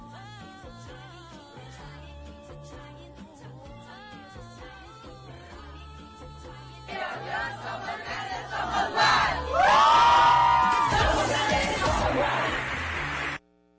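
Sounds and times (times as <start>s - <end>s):
large group of young people chanting a university battle cry: 6.9s - 9.8s, 10.8s - 12.8s
large group of young people yelling collectively: 8.5s - 13.2s.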